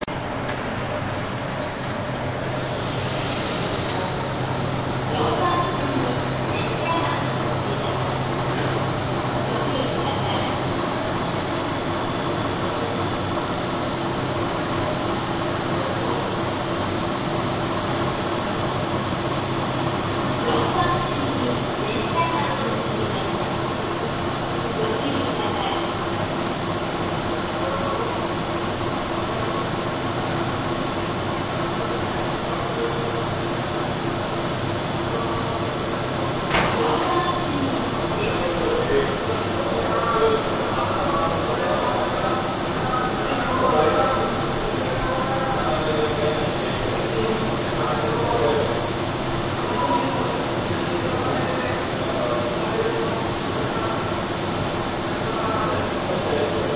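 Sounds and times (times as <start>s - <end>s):
railway compressor running: 0.0s - 56.7s.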